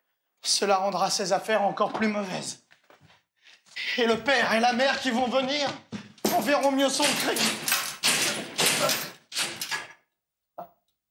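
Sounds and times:
speech: 0.4s - 2.6s, 4.0s - 7.7s, 8.8s - 9.0s
door banging and scraping in a recorded stage play: 5.0s - 10.0s.

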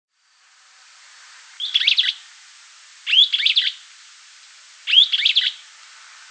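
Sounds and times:
Streaked flycatcher Myiodynastes maculatus calls: 1.4s - 2.4s, 3.0s - 5.9s.

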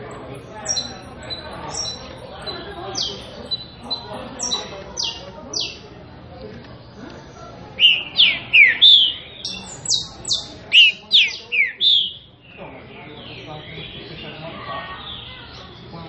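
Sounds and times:
green-winged saltator singing classic-style song: 0.1s - 5.9s, 7.8s - 12.3s.

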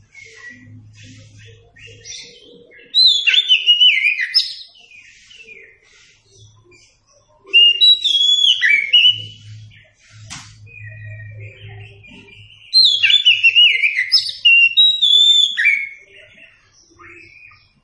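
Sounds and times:
Oriental magpie-robin song for training captive birds: 0.0s - 17.8s
sharp click: 10.3s - 10.6s.

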